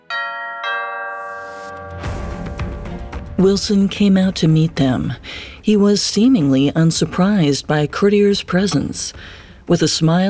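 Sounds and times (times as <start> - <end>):
doorbell two-tone ding-dong: 0.1 - 2.1
speech: 3.4 - 10.2.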